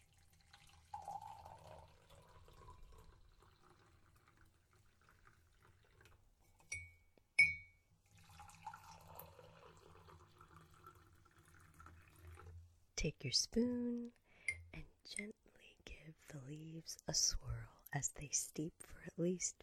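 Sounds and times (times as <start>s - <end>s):
hot water poured into a cup: 0.0s - 6.2s, 8.0s - 12.6s
ceramic clinks: 6.7s - 7.8s
speech: 13.0s - 14.2s, 16.5s - 19.6s.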